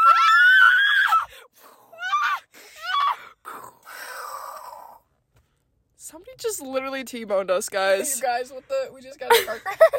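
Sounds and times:
people screaming: 0.0s - 1.3s
speech: 6.3s - 9.9s.

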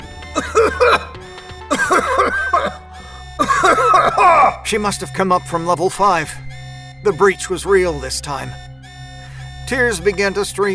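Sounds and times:
laughter: 0.1s - 4.9s
person coughing harshly from a smell of rotten eggs: 0.4s - 2.8s, 3.4s - 4.6s
speech: 4.3s - 8.7s, 9.7s - 10.7s.

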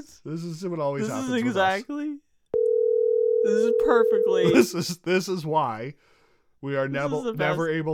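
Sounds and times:
speech: 0.0s - 2.2s, 3.4s - 7.9s
phone ringing tone of an unanswered outgoing call: 2.6s - 4.5s.

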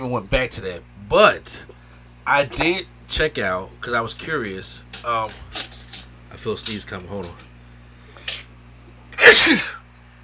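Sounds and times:
speech: 0.0s - 5.6s, 6.4s - 7.4s, 9.2s - 9.8s
sneeze: 9.2s - 9.8s.

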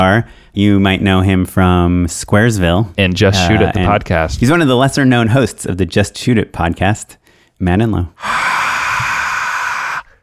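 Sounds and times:
speech: 0.0s - 8.6s
breathy exhaled gasp voiced to imitate a crowd roar: 8.2s - 10.2s.

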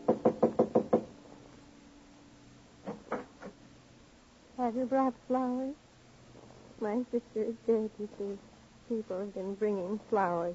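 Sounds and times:
sharp knocks on a wooden panel door: 0.0s - 1.1s
speech: 4.7s - 5.8s, 6.8s - 10.5s.

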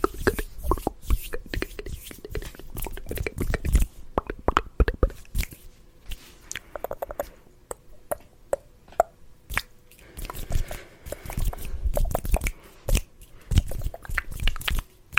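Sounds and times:
quick hand rubbing and brushing: 0.0s - 4.1s, 5.1s - 7.4s, 9.5s - 15.1s
fast wet and dry mouth clicks, smacks and crunchy pops: 0.0s - 15.1s.

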